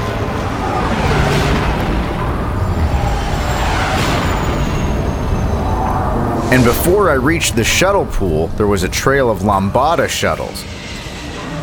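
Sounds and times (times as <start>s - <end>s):
sonic booms: 0.0s - 10.0s
rumbling roar: 0.0s - 11.6s
speech: 6.6s - 10.8s.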